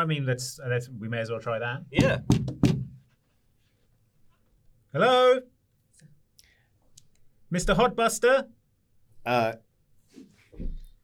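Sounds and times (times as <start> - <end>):
speech: 0.0 - 2.6, 4.9 - 6.1, 7.5 - 8.6, 9.2 - 10.7
very large door knocker knocking on a very large door: 2.0 - 3.0.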